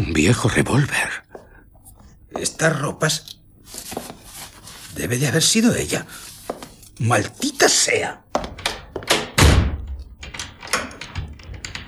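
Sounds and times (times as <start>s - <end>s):
speech: 0.1s - 1.2s, 2.3s - 4.1s, 5.0s - 8.6s
heavy door thudding shut: 8.5s - 11.8s.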